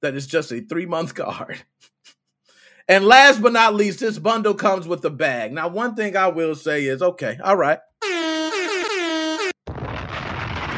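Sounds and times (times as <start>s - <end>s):
speech: 0.0s - 2.2s, 2.9s - 7.9s
air horn blaring with wobbling pitch: 8.0s - 9.6s
harsh noisy bomb explosion burst: 9.6s - 10.7s.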